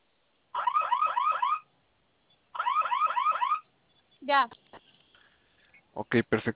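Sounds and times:
security alarm panel siren warbling: 0:00.6 - 0:01.7, 0:02.6 - 0:03.7
speech: 0:04.3 - 0:04.8, 0:06.0 - 0:06.5.

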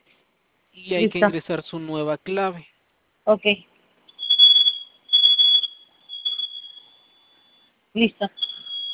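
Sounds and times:
speech: 0:00.8 - 0:03.7, 0:08.0 - 0:08.5
security system alarm piercing high-pitched beeps: 0:04.1 - 0:08.9.

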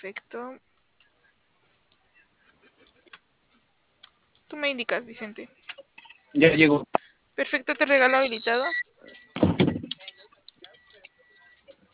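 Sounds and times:
speech: 0:00.0 - 0:00.7, 0:04.5 - 0:05.6, 0:06.3 - 0:09.2
door being opened with a loud double clunk: 0:09.4 - 0:10.0.

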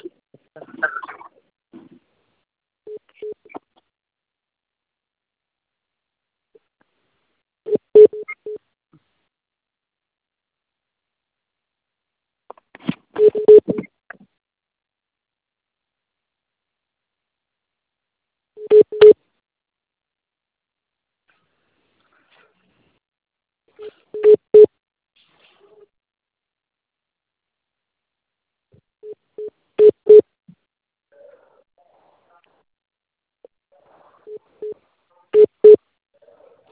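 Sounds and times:
phone dialing beeps: 0:07.7 - 0:08.6, 0:13.2 - 0:13.9, 0:18.6 - 0:19.2, 0:24.2 - 0:24.7, 0:29.1 - 0:30.2, 0:35.4 - 0:35.8.

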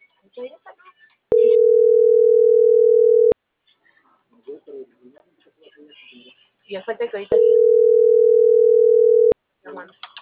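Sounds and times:
speech: 0:00.3 - 0:01.5, 0:06.7 - 0:08.2
telephone line tone while waiting for an operator to answer: 0:01.3 - 0:03.4, 0:07.4 - 0:09.3.

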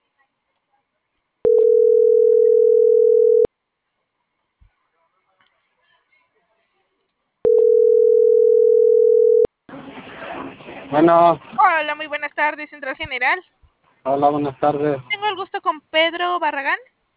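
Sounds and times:
telephone ringing tone while a call is placed: 0:01.5 - 0:03.5, 0:07.5 - 0:09.5
speech: 0:10.9 - 0:16.9.

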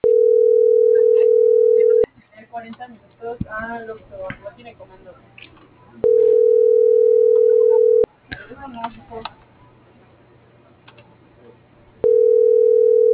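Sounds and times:
low telephone dial tone after a dropped call: 0:00.0 - 0:02.0, 0:06.0 - 0:08.0, 0:12.0 - 0:13.1
speech: 0:02.6 - 0:06.3, 0:08.5 - 0:09.5.

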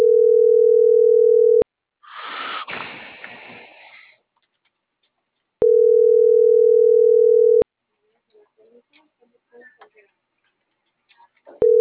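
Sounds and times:
telephone ringback tone in two-second buzzes: 0:00.0 - 0:01.6, 0:05.6 - 0:07.6.

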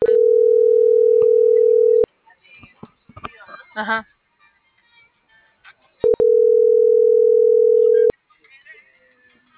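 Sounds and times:
telephone dial tone: 0:00.0 - 0:02.0, 0:06.1 - 0:08.1
speech: 0:03.8 - 0:04.2.

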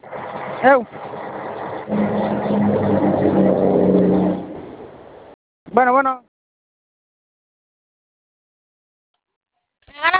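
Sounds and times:
car engine starting, running and revving: 0:00.0 - 0:05.4
speech: 0:00.6 - 0:01.1, 0:01.9 - 0:03.6, 0:05.8 - 0:06.2.

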